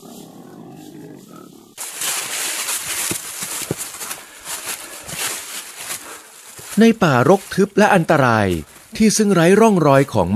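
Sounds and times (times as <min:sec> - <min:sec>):
wild boar soft snorts: 0:00.0 - 0:06.8
wild boar rooting in soil and leaf litter: 0:00.0 - 0:10.3
speech: 0:06.8 - 0:10.3.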